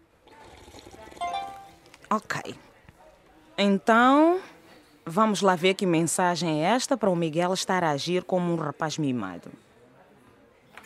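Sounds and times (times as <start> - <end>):
tea or water pouring into a cup or glass: 0.2 - 2.0
speech: 2.1 - 2.7, 3.6 - 9.7.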